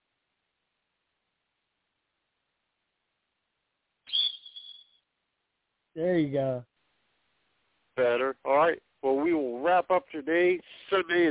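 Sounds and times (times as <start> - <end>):
shrill blast from a coach's whistle: 4.1 - 5.0
speech: 6.0 - 6.7, 8.0 - 11.2.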